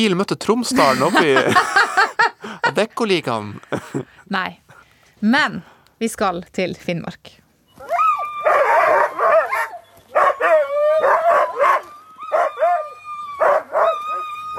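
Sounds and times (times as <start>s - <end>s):
speech: 0.0s - 4.6s, 5.2s - 7.9s
laughter: 0.7s - 4.1s
sled dog team barking, yipping and whining: 7.8s - 14.5s.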